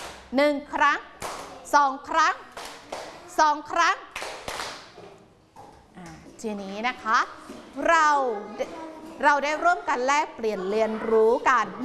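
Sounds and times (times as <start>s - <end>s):
speech: 0.3s - 2.5s, 3.4s - 4.0s, 6.4s - 11.8s
group of children clapping together: 1.2s - 1.6s, 2.5s - 3.2s, 4.1s - 5.0s.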